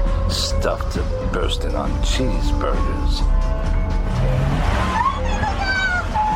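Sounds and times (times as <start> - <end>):
car engine revving as it lurches forward at a crosswalk: 0.1 - 6.3
speech: 0.3 - 4.4.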